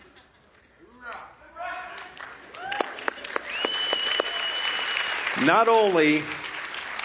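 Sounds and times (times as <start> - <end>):
crowd cheering: 1.6 - 7.0
people clapping: 1.8 - 7.0
long piercing whistle: 3.5 - 5.2
speech: 5.4 - 6.4.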